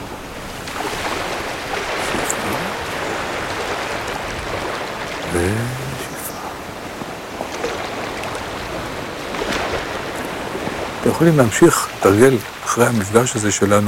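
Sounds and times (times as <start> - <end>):
faint wind noise: 0.0 - 13.8
sea waves washing in and receding: 0.0 - 13.8
speech: 11.2 - 13.8.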